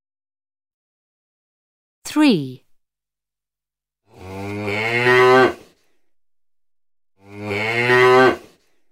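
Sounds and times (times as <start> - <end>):
speech: 2.1 - 2.6
cow mooing: 4.1 - 5.7, 7.2 - 8.6.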